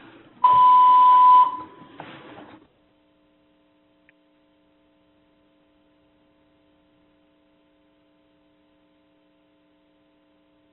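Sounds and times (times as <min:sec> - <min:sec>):
building electronic tone interfering with the audio: 0:00.4 - 0:01.7.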